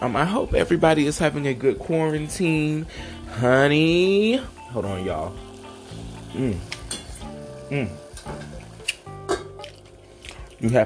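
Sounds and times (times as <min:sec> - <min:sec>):
speech: 0:00.0 - 0:05.4, 0:06.3 - 0:06.8, 0:07.7 - 0:08.5, 0:10.6 - 0:10.8
food frying in a pan while dinner is cooked at home: 0:00.2 - 0:10.8
pan clinking while food is stirred: 0:06.7 - 0:07.4.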